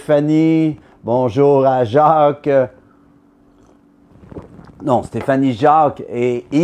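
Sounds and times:
speech: 0.0s - 2.8s, 4.8s - 6.6s
low hum: 0.0s - 6.6s
slurping sip of coffee: 3.5s - 5.4s.

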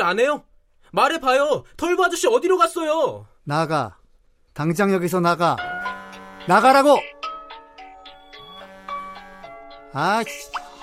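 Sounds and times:
speech: 0.0s - 4.0s, 4.6s - 7.2s, 10.0s - 10.6s
phone ringtone with bright repeating electronic melody of chiming notes: 5.6s - 10.8s.

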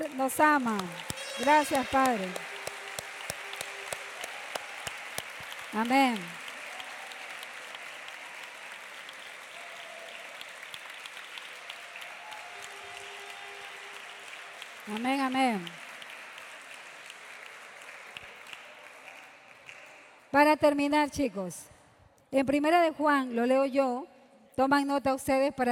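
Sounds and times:
congregation clapping: 0.0s - 20.4s
speech: 0.1s - 2.5s, 5.7s - 6.4s, 14.9s - 15.8s, 20.3s - 21.7s, 22.3s - 25.7s.

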